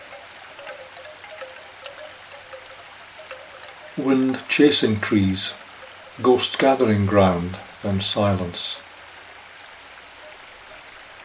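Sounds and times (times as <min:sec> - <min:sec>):
rain drops splashing on wet streets: 0:00.0 - 0:07.9
typhoon rain on wet streets in Hong Kong: 0:03.9 - 0:11.2
speech: 0:04.0 - 0:05.6, 0:06.2 - 0:08.8.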